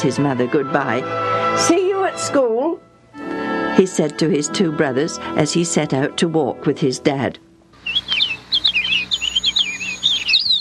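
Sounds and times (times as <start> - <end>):
speech: 0.0 - 8.1
birds singing: 7.8 - 10.5.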